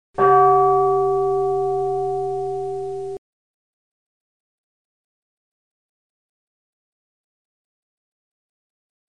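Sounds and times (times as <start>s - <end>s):
temple bell ringing: 0.2s - 3.2s.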